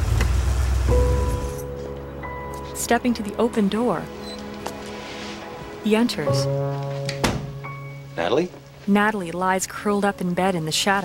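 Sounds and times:
car engine rumbling as the car pulls in and parks at a motel at night: 0.0 - 1.6
speech: 2.8 - 4.2, 5.8 - 7.1, 8.2 - 11.0.

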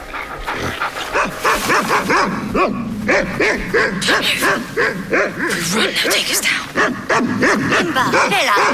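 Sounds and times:
two large dogs barking deeply: 0.0 - 8.7
speech: 1.7 - 8.7.

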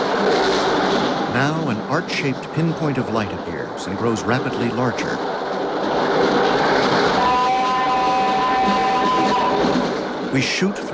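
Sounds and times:
train rushing along the tracks with rattling carriages: 0.0 - 10.9
speech: 1.4 - 5.3, 10.3 - 10.9
high metallic whine: 7.0 - 10.9.

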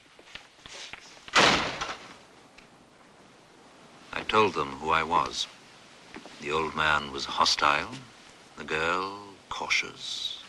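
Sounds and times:
light movement sounds: 0.0 - 10.4
door shut with a firm slam: 1.3 - 2.2
speech: 4.3 - 5.6, 6.4 - 10.3.

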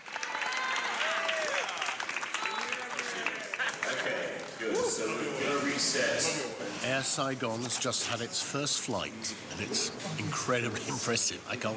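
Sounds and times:
theatre cast applauding: 0.0 - 4.7
people whooping: 0.1 - 3.8
speech: 5.0 - 11.7.

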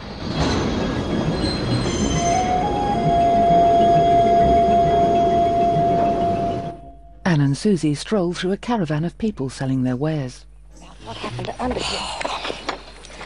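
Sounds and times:
low rumble of a braking train: 0.0 - 10.8
train wheels squealing while braking to a halt: 0.1 - 7.0
speech: 7.6 - 12.6.

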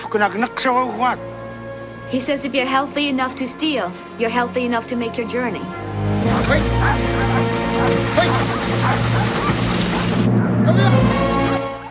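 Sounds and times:
speech: 0.1 - 1.4, 2.1 - 9.4, 10.6 - 11.2
sled dogs barking, yipping and whimpering in deep snow: 5.7 - 10.8.

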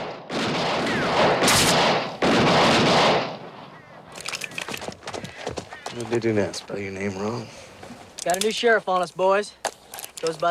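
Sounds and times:
man firing his guns to rouse sleeping men: 0.0 - 3.8
speech: 6.0 - 9.6, 10.2 - 10.4.

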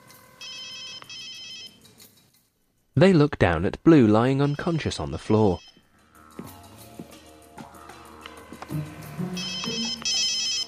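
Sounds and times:
electronic cell phone ringtone from an incoming call: 0.0 - 1.8, 4.4 - 6.8, 8.7 - 10.6
speech: 3.0 - 5.7.

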